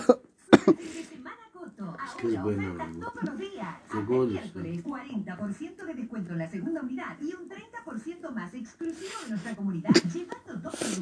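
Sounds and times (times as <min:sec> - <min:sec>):
person coughing: 0:00.0 - 0:01.0, 0:09.9 - 0:10.2
speech: 0:02.2 - 0:10.9.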